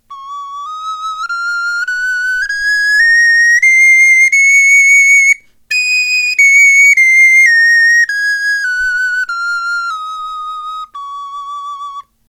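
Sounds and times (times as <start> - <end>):
musical scale: 0.1 - 12.1.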